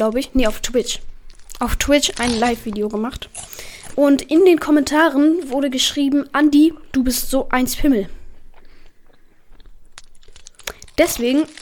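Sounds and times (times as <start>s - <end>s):
speech: 0.0s - 8.2s, 11.0s - 11.5s
chewing on a Knopper wafer bar: 0.1s - 4.4s, 8.1s - 11.5s.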